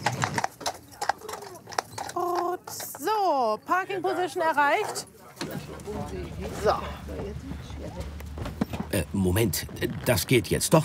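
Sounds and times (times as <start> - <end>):
horse hooves clip-clopping on a hard street on an island: 0.0 - 3.5, 5.4 - 10.6
speech: 3.5 - 8.2, 8.9 - 10.8.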